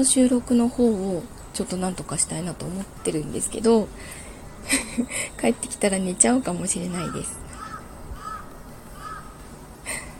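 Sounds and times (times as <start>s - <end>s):
speech: 0.0s - 7.4s
laughter: 4.6s - 5.3s
crow cawing: 6.9s - 9.5s.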